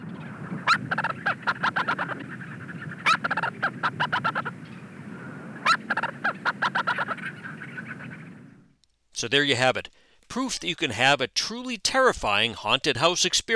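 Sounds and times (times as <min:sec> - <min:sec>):
Leach's storm petrel calling from its nest: 0:00.3 - 0:08.3
speech: 0:09.2 - 0:13.5.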